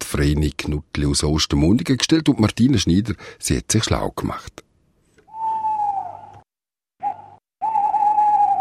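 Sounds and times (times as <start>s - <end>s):
speech: 0.2s - 4.7s
owls hooting at night: 5.2s - 6.4s, 7.0s - 8.5s.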